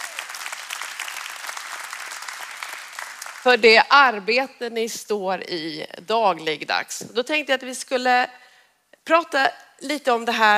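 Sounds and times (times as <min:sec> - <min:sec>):
audience applause in a room: 0:00.0 - 0:03.5
speech: 0:03.4 - 0:08.4, 0:09.1 - 0:10.5.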